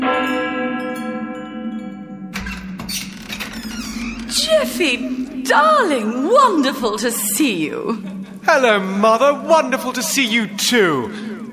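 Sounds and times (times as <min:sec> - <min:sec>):
house doorbell ringing with a resonant chime: 0:00.0 - 0:09.2
speech: 0:04.3 - 0:11.3.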